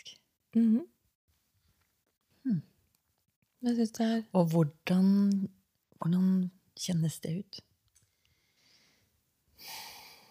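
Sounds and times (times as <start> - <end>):
speech: 0.5 - 0.9, 2.4 - 2.7, 3.6 - 7.7
deep inhale: 8.1 - 10.2.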